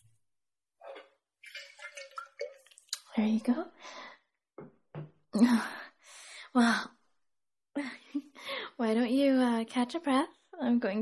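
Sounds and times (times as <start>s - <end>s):
water poured into a glass: 1.4s - 3.2s
speech: 3.2s - 3.8s, 5.4s - 5.7s, 6.6s - 6.9s, 8.9s - 11.0s.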